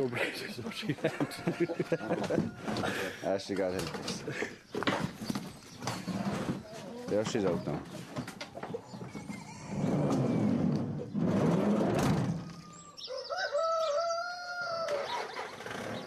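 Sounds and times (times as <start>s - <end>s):
laughter: 0.0s - 3.3s, 4.1s - 4.7s, 9.2s - 10.2s
speech: 0.0s - 4.7s, 7.1s - 8.1s
chickens squawking in the back of a van: 0.0s - 16.0s
rooster crowing: 1.0s - 3.0s, 12.4s - 15.3s.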